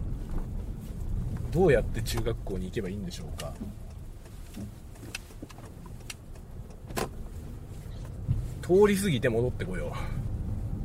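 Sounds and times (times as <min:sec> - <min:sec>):
car engine and road rumble while driving on a work trip: 0:00.0 - 0:10.8
faint clicks and rattles in a car cabin: 0:00.2 - 0:08.4
speech: 0:01.5 - 0:03.8, 0:08.7 - 0:10.2.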